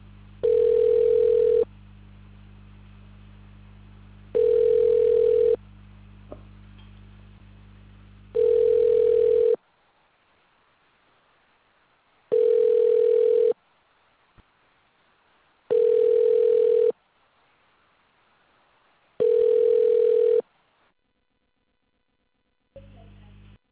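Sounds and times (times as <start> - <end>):
low hum: 0.0 - 9.5
telephone ringback tone while a call is placed: 0.4 - 1.7, 4.4 - 5.6, 8.4 - 9.6, 12.3 - 13.6, 15.7 - 16.9, 19.2 - 20.4.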